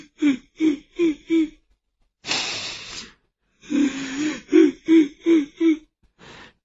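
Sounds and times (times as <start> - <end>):
person imitating crying with wails and sobbing whimpers: 0.2 - 1.5, 4.4 - 5.8.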